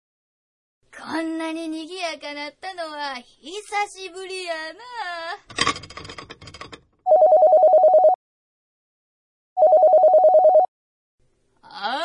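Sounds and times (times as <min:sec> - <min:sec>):
speech: 0:01.1 - 0:06.2
telephone ringing with rapid trilling bell tones: 0:07.1 - 0:08.2, 0:09.6 - 0:10.7.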